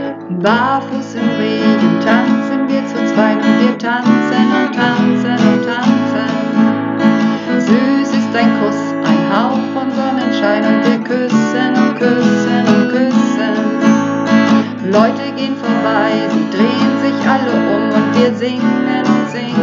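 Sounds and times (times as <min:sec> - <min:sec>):
person singing lead part in practice recording: 0:00.2 - 0:19.6.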